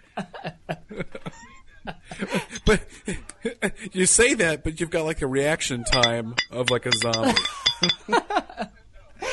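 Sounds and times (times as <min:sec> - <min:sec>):
laughter: 0:00.0 - 0:04.0, 0:07.2 - 0:09.3
speech: 0:00.9 - 0:01.4, 0:03.9 - 0:08.2
glass bottles clinking: 0:05.8 - 0:08.1.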